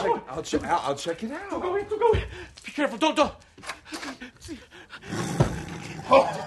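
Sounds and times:
speech: 0.2s - 5.4s
tiger roaring: 5.1s - 6.4s.

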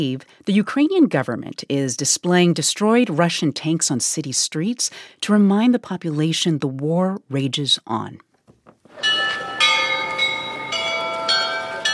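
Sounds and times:
speech: 0.0s - 8.3s
monastery church bells chiming the hour: 8.9s - 11.9s.

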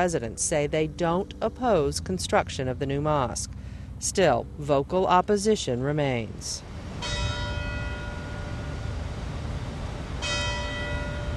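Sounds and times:
speech: 0.0s - 6.7s
steady outdoor noise: 0.0s - 11.3s
courthouse bell tower bell ringing: 7.0s - 9.2s, 9.8s - 11.3s.

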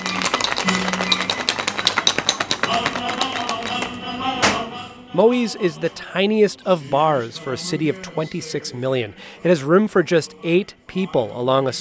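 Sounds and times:
cocktail shaker rattling ice: 0.0s - 3.9s
speech: 5.2s - 11.7s.

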